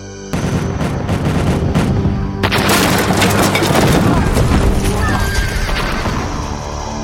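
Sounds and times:
heavy cannon fire from many guns during an assault on a walled town: 0:00.3 - 0:06.4
horses whinnying: 0:03.9 - 0:06.6.

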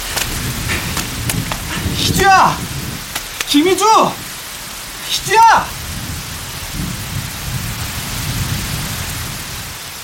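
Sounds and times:
heavy rain pouring: 0:00.0 - 0:10.0
speech: 0:03.5 - 0:04.2, 0:05.1 - 0:05.8.

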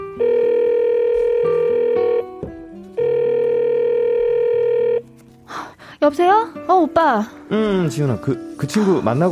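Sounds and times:
phone ringback tone: 0:00.0 - 0:02.4, 0:03.0 - 0:05.1
speech: 0:06.0 - 0:09.3.

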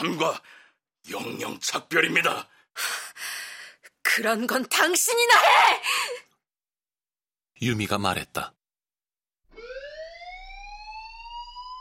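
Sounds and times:
speech: 0:00.0 - 0:03.3, 0:04.1 - 0:06.3, 0:07.6 - 0:08.6
fire alarm on a laboratory ceiling ringing: 0:09.5 - 0:11.7.

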